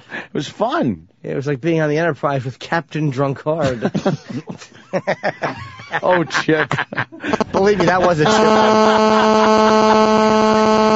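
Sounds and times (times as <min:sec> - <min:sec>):
speech: 0:00.3 - 0:10.9
laughter: 0:03.6 - 0:10.8
loud steady electrical hum: 0:07.0 - 0:10.9
harsh static buzzing in a fast regular pulsing rhythm: 0:07.3 - 0:10.9.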